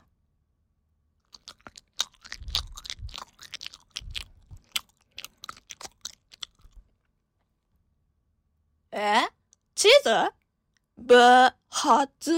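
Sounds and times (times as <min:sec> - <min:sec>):
person chewing a mouthful of natto on rice: 0:01.2 - 0:07.1
speech: 0:09.0 - 0:10.4, 0:11.0 - 0:12.3.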